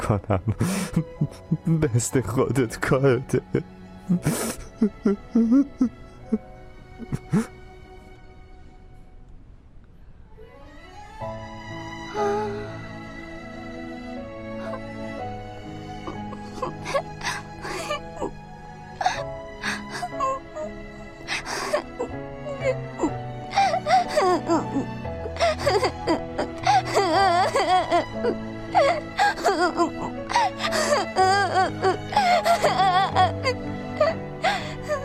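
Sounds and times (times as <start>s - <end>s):
speech: 0.1s - 7.6s
person crying and whimpering: 0.4s - 1.9s, 3.4s - 7.6s, 14.6s - 15.0s, 15.9s - 35.0s.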